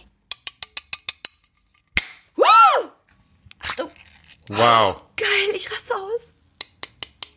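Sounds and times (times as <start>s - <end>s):
full-lid can of hazy IPA being ripped open: 3.5s - 4.6s
speech: 4.5s - 6.3s.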